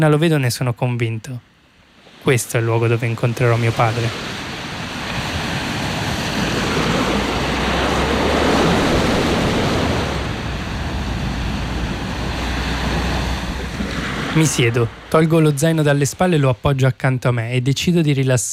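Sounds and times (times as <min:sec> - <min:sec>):
speech: 0:00.0 - 0:01.5, 0:02.2 - 0:04.4, 0:14.4 - 0:18.5
ocean waves washing below a sea cliff: 0:01.0 - 0:18.2
wind rushing across the microphone: 0:03.5 - 0:15.8.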